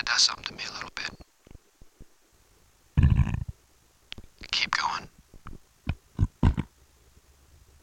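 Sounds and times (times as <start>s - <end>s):
speech: 0.2s - 1.2s
low guttural burps: 3.0s - 3.5s, 6.1s - 6.7s.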